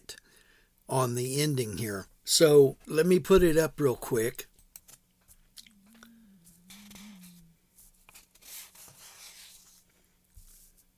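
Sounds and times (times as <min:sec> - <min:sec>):
faint low wavering hum: 0:00.0 - 0:10.9
speech: 0:00.9 - 0:04.5
paper pages being turned: 0:07.8 - 0:10.9.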